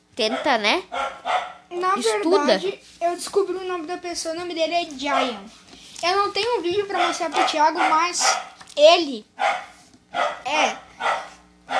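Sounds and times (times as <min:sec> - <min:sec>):
dog barking: 0:00.2 - 0:01.7, 0:05.0 - 0:05.5, 0:06.9 - 0:08.6, 0:09.4 - 0:11.7
speech: 0:00.2 - 0:11.2.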